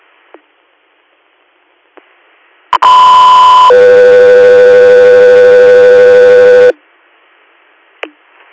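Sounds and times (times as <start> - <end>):
radio dispatch alert tones: 2.8 - 6.8.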